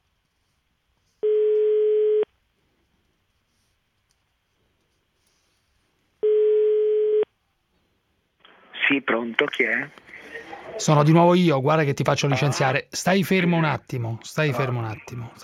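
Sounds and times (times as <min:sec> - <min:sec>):
telephone ringback tone while calling someone back: 0:01.2 - 0:02.3, 0:06.2 - 0:07.3
speech: 0:08.9 - 0:10.2, 0:10.8 - 0:15.4.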